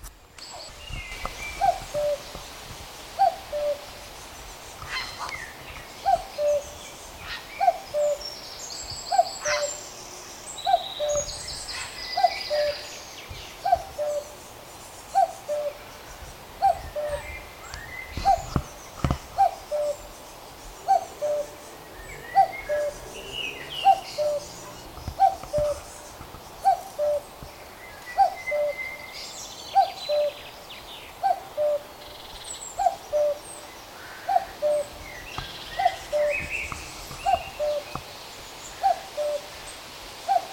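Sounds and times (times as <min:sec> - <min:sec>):
hissy outdoor background: 0:00.0 - 0:40.5
common cuckoo calling in flight: 0:00.4 - 0:02.5, 0:03.2 - 0:04.0, 0:04.8 - 0:10.0, 0:10.6 - 0:14.4, 0:15.1 - 0:20.2, 0:20.8 - 0:39.7, 0:40.3 - 0:40.5.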